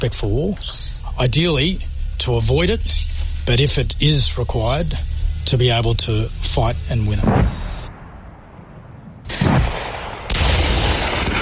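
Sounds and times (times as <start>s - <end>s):
speech: 0.0s - 7.7s
artillery blasts during a military war exercise over a large valley: 7.1s - 11.4s
gunfire during a military war exercise: 7.2s - 8.2s, 9.3s - 11.4s.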